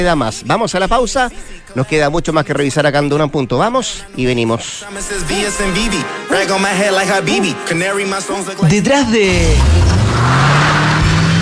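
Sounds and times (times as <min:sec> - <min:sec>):
speech: 0:00.0 - 0:10.3
car engine revving: 0:09.2 - 0:11.4.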